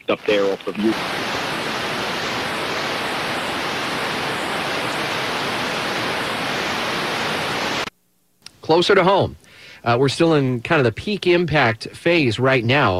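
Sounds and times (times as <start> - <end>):
heavy rain: 0.0 - 7.9
speech: 0.1 - 1.4, 8.7 - 12.9.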